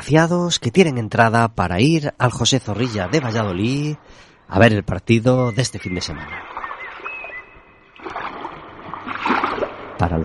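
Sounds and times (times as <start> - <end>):
speech: 0.0 - 6.6, 10.0 - 10.2
sea water sloshing and splashing: 2.2 - 4.4, 5.5 - 10.2.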